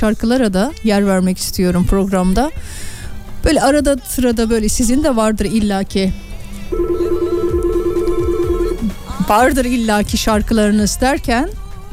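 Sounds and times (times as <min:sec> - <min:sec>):
speech: 0:00.0 - 0:07.0, 0:09.3 - 0:11.6
telephone ringing in a studio: 0:06.7 - 0:09.1.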